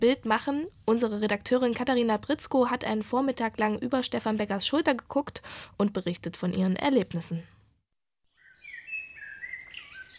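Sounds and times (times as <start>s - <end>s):
speech: 0.0s - 7.6s
birds chirping in spring: 8.3s - 10.1s.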